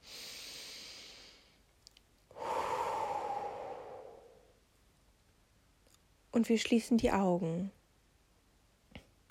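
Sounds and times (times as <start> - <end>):
deep breathing in and out: 0.0 - 1.7, 2.3 - 4.6
speech: 6.4 - 7.8.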